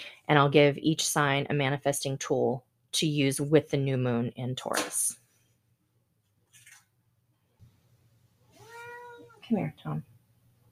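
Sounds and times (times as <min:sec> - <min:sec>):
speech: 0:00.3 - 0:05.2, 0:09.5 - 0:10.1
cat meowing: 0:08.5 - 0:09.5.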